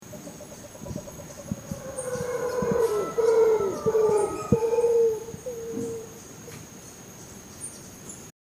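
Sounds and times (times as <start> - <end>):
howler monkey calling: 0.4 - 6.2.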